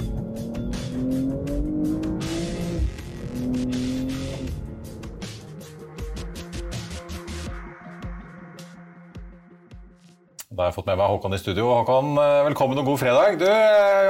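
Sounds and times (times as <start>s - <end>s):
four-wheel-drive sports car engine revving and accelerating: 0.0s - 5.8s
speech: 10.6s - 14.0s.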